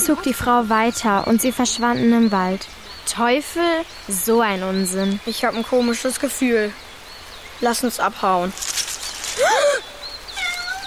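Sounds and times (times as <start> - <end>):
speech: 0.0 - 6.9, 7.6 - 8.8, 9.4 - 9.9
cat meowing: 10.3 - 10.8.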